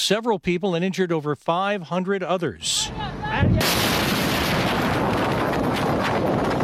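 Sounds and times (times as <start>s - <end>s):
speech: 0.0s - 4.0s
massive explosion at a port rumbling: 3.4s - 6.6s.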